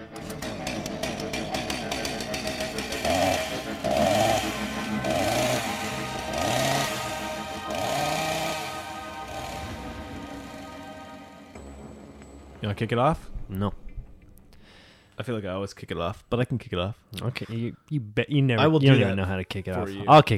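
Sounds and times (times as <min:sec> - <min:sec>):
small two-stroke chainsaw engine revving: 0:00.0 - 0:11.3
speech: 0:12.7 - 0:13.7, 0:15.2 - 0:20.3.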